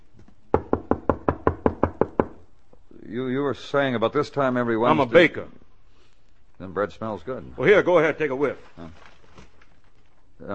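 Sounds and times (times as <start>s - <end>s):
knocking on a door: 0.5s - 2.4s
speech: 3.1s - 5.6s, 6.6s - 9.1s.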